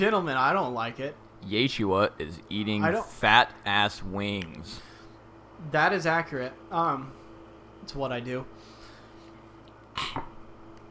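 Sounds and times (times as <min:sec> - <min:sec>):
speech: 0:00.0 - 0:04.9, 0:05.6 - 0:07.2, 0:07.8 - 0:08.7, 0:10.0 - 0:10.3
quiet hum: 0:00.0 - 0:10.9
harsh cough after sipping whiskey: 0:10.0 - 0:10.3.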